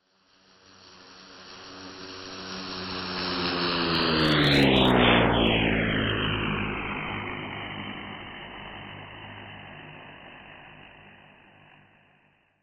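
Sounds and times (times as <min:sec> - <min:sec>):
light aircraft flying at 400 km per hour: 0:00.0 - 0:12.6.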